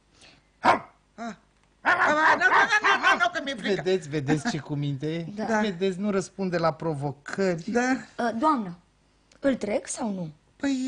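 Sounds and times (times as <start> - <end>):
stray community dog barking in a park: 0.6 - 1.0
laughter: 1.8 - 4.6
speech: 2.7 - 8.8, 9.4 - 10.8.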